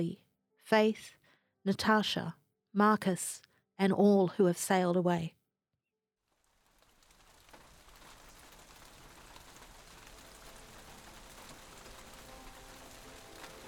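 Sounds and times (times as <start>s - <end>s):
speech: 0.0s - 5.4s
heavy rain pouring: 6.3s - 13.6s.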